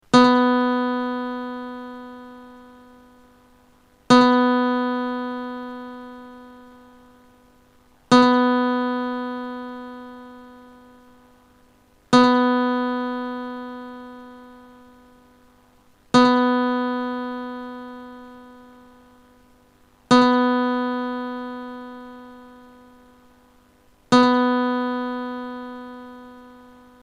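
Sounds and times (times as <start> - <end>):
guitar B second string note: 0.1 - 3.3, 4.1 - 7.4, 8.1 - 11.3, 12.1 - 15.4, 16.1 - 19.4, 20.1 - 23.2, 24.1 - 27.0.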